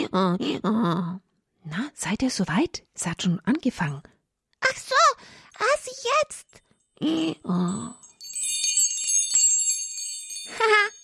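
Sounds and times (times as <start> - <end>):
speech: 0.1 - 4.1, 4.7 - 8.0, 10.5 - 11.0
small bell ringing: 6.5 - 11.0.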